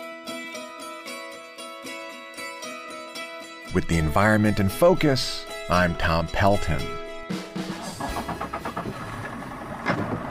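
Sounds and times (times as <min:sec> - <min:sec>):
speech: 0:03.7 - 0:07.0
motorboat engine starting, cranking and idling: 0:07.3 - 0:10.2.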